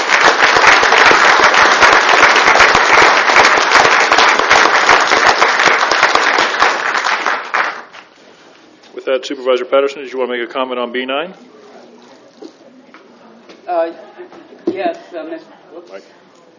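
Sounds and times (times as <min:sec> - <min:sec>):
audience applause in a county board meeting chamber: 0:00.0 - 0:08.1
speech: 0:09.2 - 0:11.6, 0:13.8 - 0:14.0, 0:14.8 - 0:16.2.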